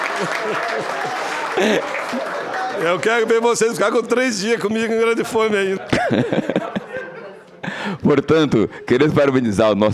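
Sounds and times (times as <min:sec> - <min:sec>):
laughter: 0:00.0 - 0:03.0, 0:05.2 - 0:09.3
audience applause at a political session: 0:00.0 - 0:03.7
speech: 0:00.2 - 0:07.2, 0:07.8 - 0:09.9.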